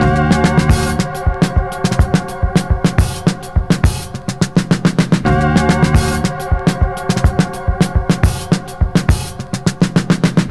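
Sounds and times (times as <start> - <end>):
drum loop with kick tuned to D: 0.0 - 10.4.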